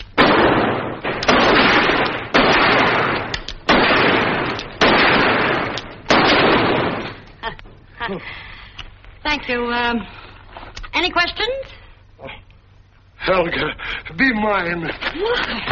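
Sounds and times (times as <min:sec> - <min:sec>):
gunshots from a gun: 0:00.0 - 0:07.3
speech: 0:08.1 - 0:08.4, 0:09.3 - 0:10.2, 0:11.0 - 0:12.4, 0:13.2 - 0:15.7.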